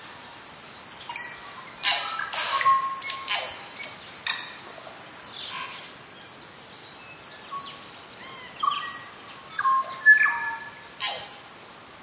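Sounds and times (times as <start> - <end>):
tui song in Northland bush New Zealand: 0.8 - 5.0, 8.6 - 11.3.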